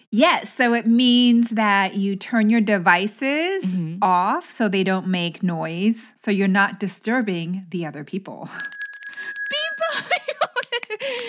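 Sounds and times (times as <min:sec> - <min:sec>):
speech: 0:00.1 - 0:08.8
lively talk: 0:00.2 - 0:08.5
quiz-show correct-answer ding-dong chime: 0:08.6 - 0:10.6
light laughter: 0:09.6 - 0:11.2.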